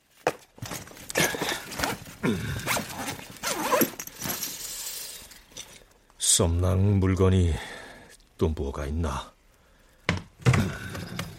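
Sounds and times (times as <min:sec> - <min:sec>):
rustling of a stuffed backpack: 0:00.0 - 0:06.0
zipper pulled closed on a bulging stuffed backpack: 0:01.2 - 0:02.0, 0:02.6 - 0:04.4
speech: 0:02.3 - 0:02.7, 0:06.4 - 0:07.7, 0:08.4 - 0:09.3.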